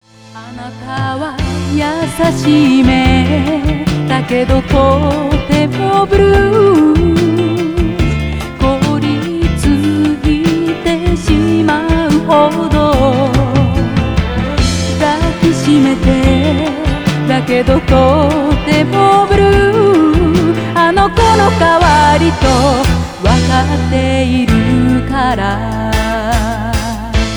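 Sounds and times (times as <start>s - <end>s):
female idol voice: 0.4s - 27.2s.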